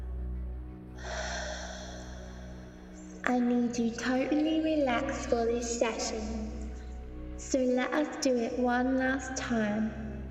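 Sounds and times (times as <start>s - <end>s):
person breathing out during a relaxation exercise: 1.0s - 3.2s
speech: 3.3s - 6.5s, 7.5s - 10.0s.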